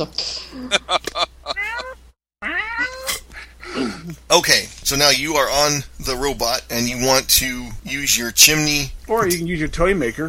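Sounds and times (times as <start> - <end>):
speech: 0.0 - 1.0, 4.3 - 10.2
older cat meowing insistently: 1.5 - 3.2.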